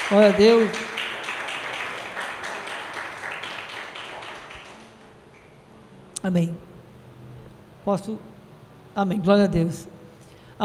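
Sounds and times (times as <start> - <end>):
audience applauding: 0.0 - 5.0
speech: 0.1 - 0.9, 6.2 - 6.7, 7.8 - 8.3, 9.0 - 10.0.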